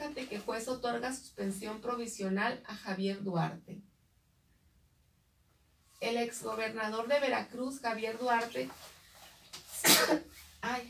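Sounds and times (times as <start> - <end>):
speech: 0.2 - 3.9, 6.0 - 8.9, 9.9 - 10.8
sneeze: 9.7 - 10.4.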